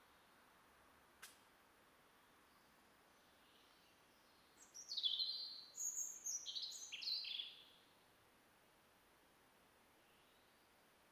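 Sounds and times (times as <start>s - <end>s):
European robin Erithacus rubecula singing: 4.6s - 7.6s.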